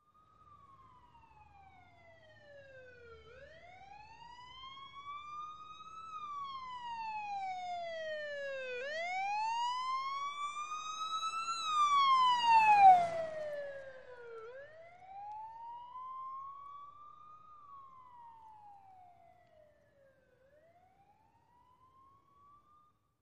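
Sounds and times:
police wailer siren passing by fast: 0.5s - 22.1s.

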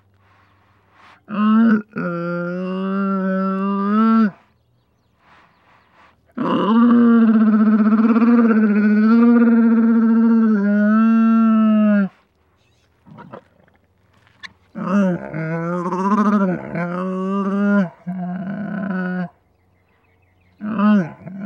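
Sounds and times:
camel roaring with harmonic bawls: 1.3s - 4.5s, 6.3s - 12.2s, 13.0s - 13.8s, 14.7s - 19.4s, 20.6s - 21.4s.

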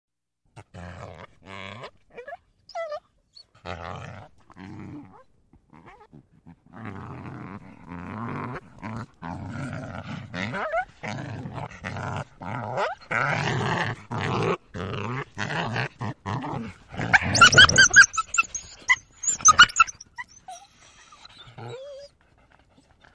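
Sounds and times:
coyote growling: 3.6s - 22.1s
coyote whimpering: 17.1s - 22.1s.

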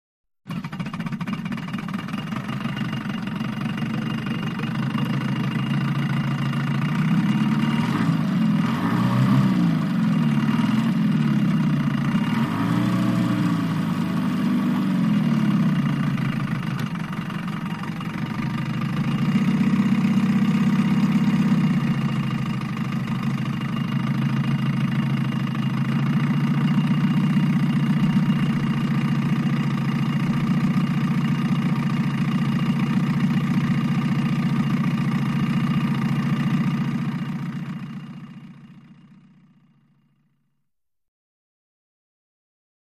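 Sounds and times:
small diesel engine: 0.4s - 40.4s.

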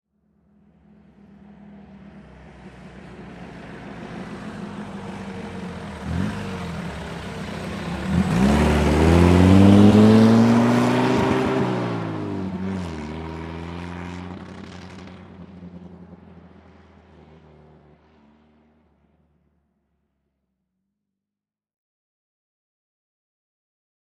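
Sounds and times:
army jeep accelerating past at medium speed: 2.2s - 15.8s.

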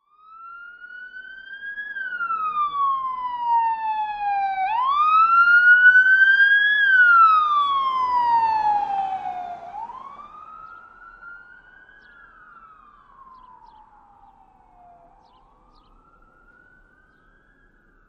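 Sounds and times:
police siren of various types: 0.0s - 18.0s
car passing fast: 7.7s - 11.6s.

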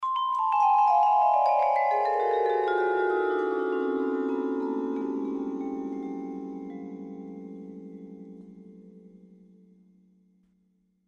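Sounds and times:
vibraphone in D played with mallets: 0.0s - 8.8s.

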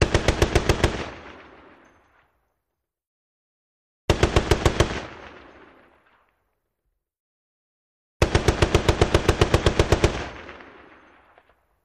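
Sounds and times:
.50 caliber gun firing medium-long bursts: 0.0s - 1.9s, 4.1s - 5.9s, 8.2s - 11.4s.

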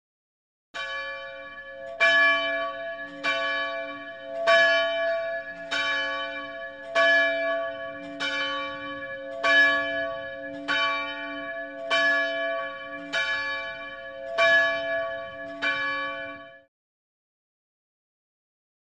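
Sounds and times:
chapel bells ringing in bell towers: 0.8s - 16.7s.

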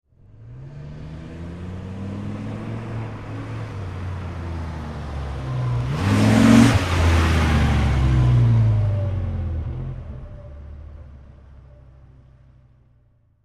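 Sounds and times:
Dodge Ram medium acceleration: 0.1s - 13.0s.

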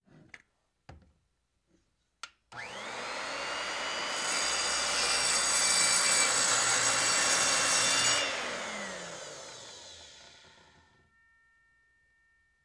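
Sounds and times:
electric circular saw switched on: 2.6s - 11.0s.

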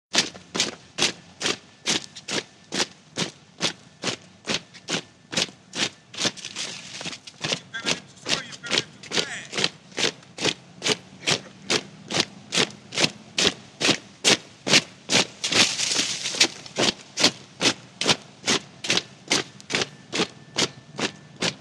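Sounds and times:
platoon marching: 0.1s - 21.5s
person shouting drill commands: 7.5s - 9.7s.

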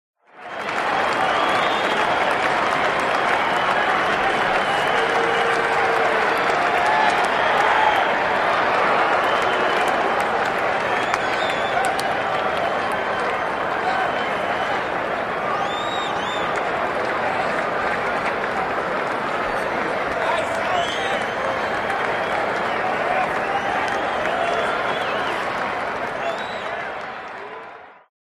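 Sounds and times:
stadium crowd ambience: 0.2s - 28.1s.

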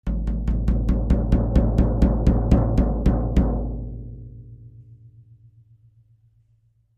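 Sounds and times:
low tom drum: 0.0s - 5.1s.

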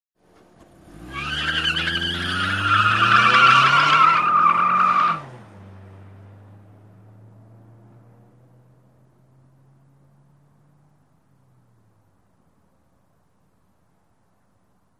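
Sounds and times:
sedan accelerating: 0.3s - 11.8s
sedan tires squealing: 0.6s - 5.5s.

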